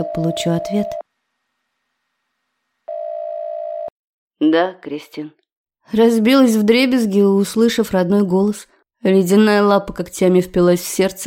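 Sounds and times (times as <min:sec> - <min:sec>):
speech: 0:00.0 - 0:01.0, 0:04.4 - 0:11.2
telephone ringback tone after a number is dialed: 0:00.0 - 0:01.0, 0:02.9 - 0:03.9.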